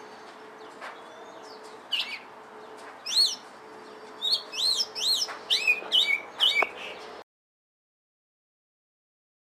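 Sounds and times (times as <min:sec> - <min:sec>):
Oriental magpie-robin delivering whistled phrases: 0:01.9 - 0:02.2, 0:03.0 - 0:03.4, 0:04.2 - 0:07.0.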